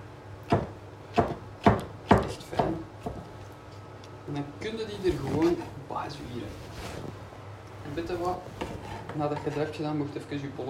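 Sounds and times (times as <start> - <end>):
knife finely chopping sun-dried tomatoes on a cutting board: 0.5 - 3.3
speech: 4.3 - 7.2, 7.9 - 8.6, 9.2 - 10.6.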